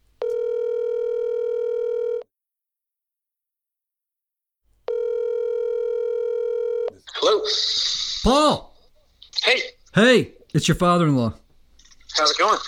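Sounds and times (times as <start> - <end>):
outgoing phone call ringback tone: 0.2 - 2.2, 4.9 - 6.9
speech: 7.4 - 8.7, 9.4 - 11.4, 12.2 - 12.6.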